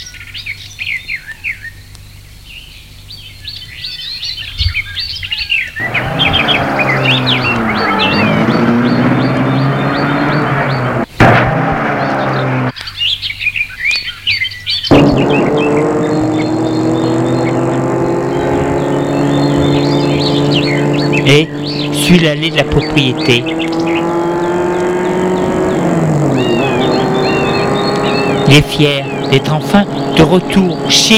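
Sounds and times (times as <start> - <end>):
birds chirping and tweeting outdoors: 0.0 - 31.1
car engine turning over, starting and driving off: 5.8 - 12.8, 14.9 - 31.1
speech: 22.2 - 23.8, 28.5 - 31.1.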